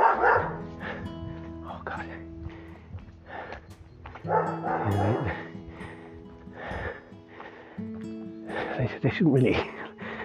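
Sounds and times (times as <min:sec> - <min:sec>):
dog barking in short sharp bursts with higher yips: 0:00.0 - 0:00.7, 0:04.3 - 0:05.5
speech: 0:04.3 - 0:05.4, 0:08.8 - 0:09.8.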